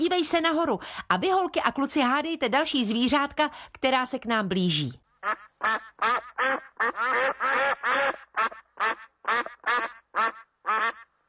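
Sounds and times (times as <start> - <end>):
speech: 0.1 - 11.1
wild ducks quacking: 5.2 - 11.1.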